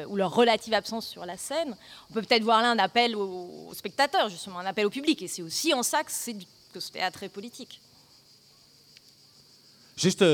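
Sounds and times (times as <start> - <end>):
speech: 0.0 - 7.9, 10.0 - 10.3
cicadas droning in a high-pitched buzz: 0.0 - 10.3
faint click: 8.9 - 9.2.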